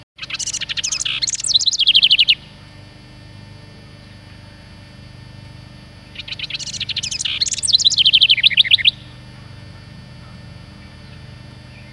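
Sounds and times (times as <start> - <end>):
wren singing: 0.2 - 2.8, 5.9 - 11.9.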